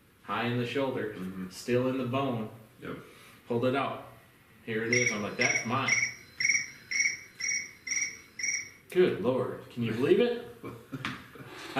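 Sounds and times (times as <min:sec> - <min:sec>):
speech: 0:00.3 - 0:04.1, 0:04.7 - 0:06.1, 0:08.9 - 0:11.2
cricket chirping in a steady rhythm: 0:04.9 - 0:08.8.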